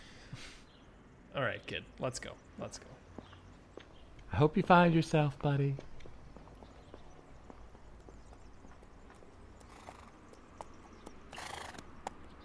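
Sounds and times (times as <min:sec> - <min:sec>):
speech: 0:01.4 - 0:03.0, 0:04.3 - 0:05.9
horse hooves clip-clopping: 0:04.0 - 0:12.4
horse whinny or snort: 0:11.3 - 0:12.0.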